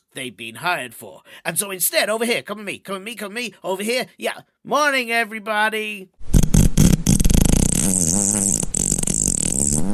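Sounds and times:
speech: 0:00.2 - 0:06.2
fart sound effect: 0:06.2 - 0:09.9.

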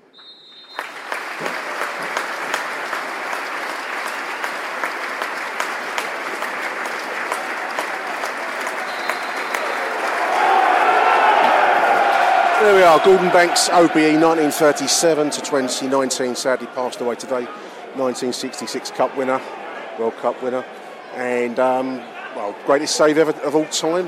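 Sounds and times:
high whistle tones: 0:00.0 - 0:00.9, 0:08.8 - 0:10.0
large stadium crowd applauding: 0:00.0 - 0:16.0
speech: 0:12.6 - 0:24.0.

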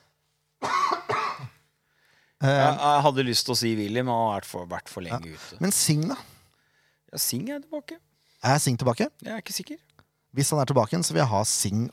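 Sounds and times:
person coughing harshly: 0:00.6 - 0:01.6
speech: 0:02.4 - 0:06.3, 0:07.1 - 0:11.9.

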